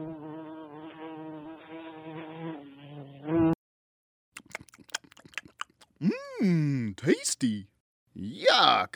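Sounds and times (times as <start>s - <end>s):
housefly buzzing: 0.0s - 3.6s
speech: 6.0s - 8.9s.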